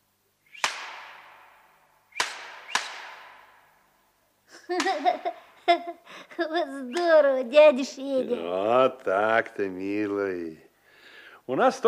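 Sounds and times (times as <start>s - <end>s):
shepherd's whip cracking: 0.5s - 3.6s
speech: 4.7s - 10.6s, 11.5s - 11.8s.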